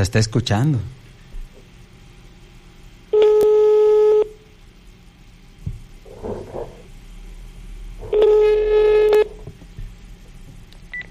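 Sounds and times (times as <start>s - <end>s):
faint noise: 0.0s - 11.1s
unanswered telephone call ringing: 8.1s - 9.3s.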